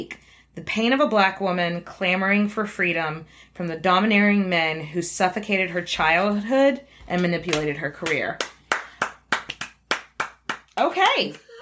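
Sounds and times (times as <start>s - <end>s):
speech: 0.0s - 8.5s, 11.0s - 11.4s
hands clapping: 7.1s - 11.6s.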